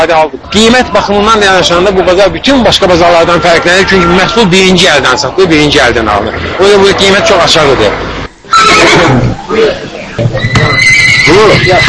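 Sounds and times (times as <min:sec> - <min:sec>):
speech: 0:00.0 - 0:11.8
horse neighing at a livestock market: 0:08.5 - 0:09.7, 0:10.4 - 0:11.8.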